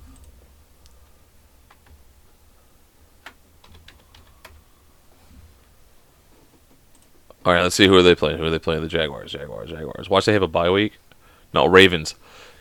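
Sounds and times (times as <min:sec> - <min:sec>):
low steady hum: 0:00.0 - 0:12.5
typing on a computer keyboard: 0:03.2 - 0:04.6
speech: 0:07.4 - 0:12.4.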